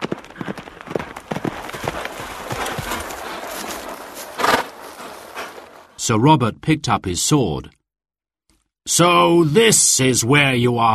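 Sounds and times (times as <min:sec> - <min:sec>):
white horse galloping hoofbeats in a forest: 0:00.0 - 0:06.0
rustling forest brush: 0:01.1 - 0:06.0
speech: 0:06.1 - 0:07.8, 0:08.8 - 0:10.9.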